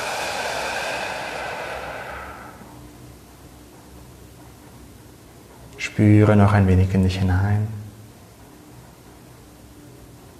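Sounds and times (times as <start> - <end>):
long breathy exhalation during a guided meditation: 0.0 - 2.8
speech: 5.8 - 7.8.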